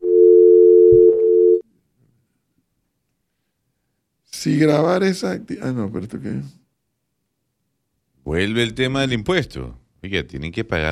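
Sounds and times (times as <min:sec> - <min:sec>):
telephone ringing with an incoming call: 0:00.0 - 0:01.6
speech: 0:04.4 - 0:06.6, 0:08.3 - 0:10.9.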